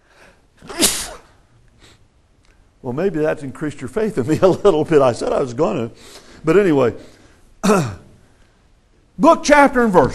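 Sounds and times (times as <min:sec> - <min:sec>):
sneeze: 0:00.6 - 0:01.4
speech: 0:02.8 - 0:08.0, 0:09.2 - 0:10.1.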